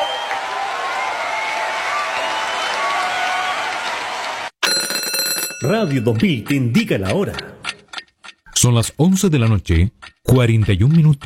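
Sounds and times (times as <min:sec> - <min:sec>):
crowd applauding: 0:00.0 - 0:04.6
speech: 0:05.6 - 0:07.6, 0:08.6 - 0:11.2.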